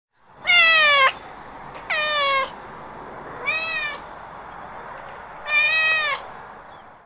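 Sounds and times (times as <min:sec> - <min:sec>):
hungry domestic cat meowing loudly: 0:00.4 - 0:01.2, 0:01.9 - 0:02.6, 0:03.3 - 0:04.0, 0:05.4 - 0:06.3.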